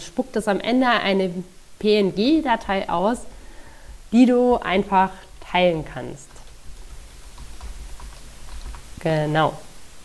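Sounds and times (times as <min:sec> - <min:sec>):
speech: 0:00.2 - 0:03.4, 0:04.1 - 0:06.3, 0:09.0 - 0:09.7
typing on a computer keyboard: 0:06.3 - 0:08.9.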